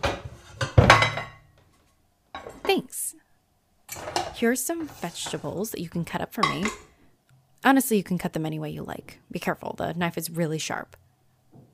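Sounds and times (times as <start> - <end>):
metal cooking pans clanking as they are grabbed: 0.0 - 1.5, 3.9 - 5.6, 6.4 - 6.9
speech: 2.7 - 3.2, 4.4 - 6.9, 7.6 - 11.0.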